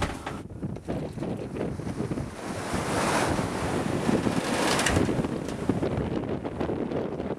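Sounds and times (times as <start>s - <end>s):
wind roaring across the microphone aboard a sailboat at sea in the Bay of Biscay: 0.0s - 7.3s
waves and surf rushing in the Bay of Biscay: 1.8s - 5.8s.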